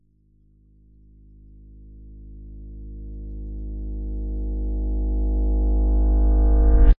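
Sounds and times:
low-pitched reversed single guitar pick note riser: 0:04.5 - 0:06.9.

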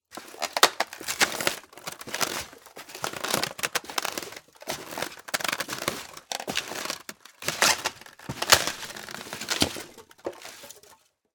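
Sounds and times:
male footsteps in boots on polystyrene: 0:00.1 - 0:11.0.

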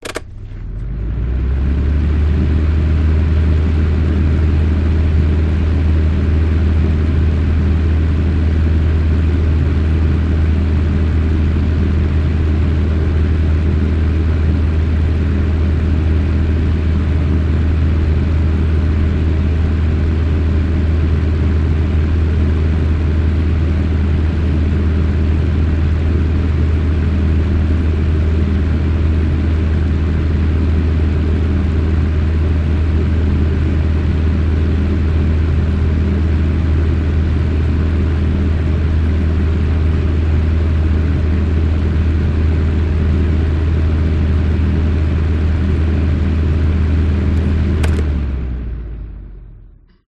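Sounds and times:
portable heater fan switch: 0:00.0 - 0:00.5, 0:47.3 - 0:48.2
household portable heater fan running: 0:00.0 - 0:48.9.

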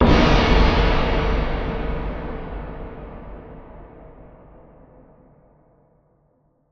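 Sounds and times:
impact boom crash: 0:00.0 - 0:04.8.

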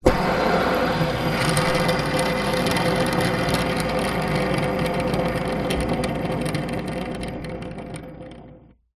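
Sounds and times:
metal fidget spinner spinning on a table: 0:00.0 - 0:08.9.

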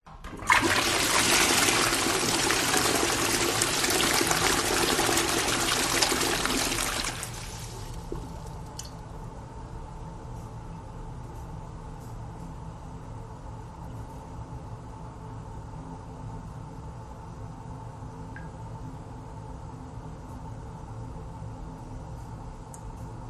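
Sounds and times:
public toilet flushing in a hut: 0:00.1 - 0:08.5
metal toilet cistern filling: 0:00.1 - 0:08.9.

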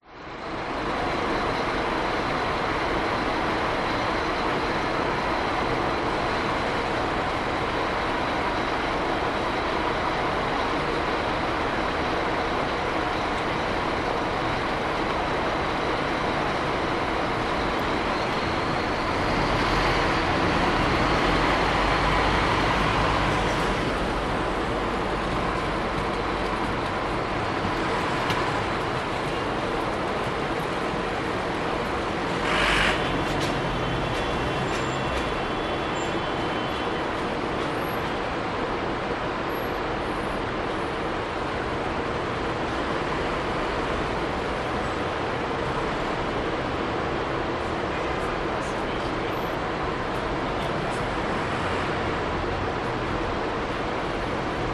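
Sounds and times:
city hum in Sydney CBD public places: 0:00.0 - 0:54.7
light traffic on Market St in Sydney: 0:00.0 - 0:54.7
pedestrians on Market St in Sydney: 0:00.0 - 0:54.7.

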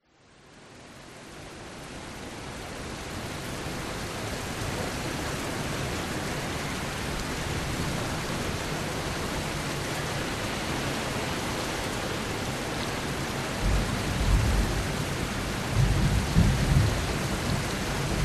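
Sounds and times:
rain heard indoors through an open window: 0:00.0 - 0:18.2
low thunder rumbles: 0:15.7 - 0:18.2.

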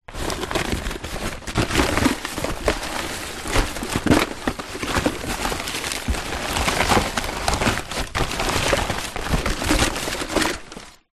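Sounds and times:
household rummaging through junk: 0:00.1 - 0:11.1.

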